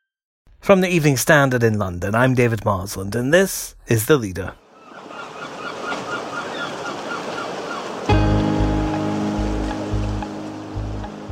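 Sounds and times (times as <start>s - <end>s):
speech: 0.7s - 4.6s
seaside waves washing in at St. Ives: 4.6s - 11.3s.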